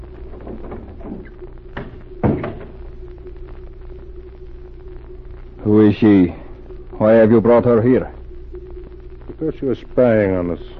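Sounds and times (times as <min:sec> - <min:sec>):
steady low hum: 0:00.0 - 0:10.7
door opening and closing: 0:00.3 - 0:02.8
speech: 0:05.7 - 0:06.4, 0:07.0 - 0:08.2, 0:09.4 - 0:10.7.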